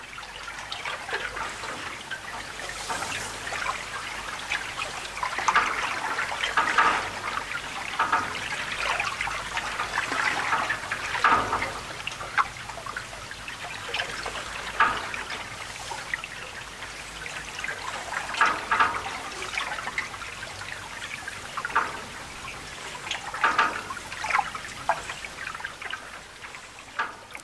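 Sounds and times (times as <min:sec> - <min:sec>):
flowing water echoing under bridge arches: 0:00.0 - 0:27.4.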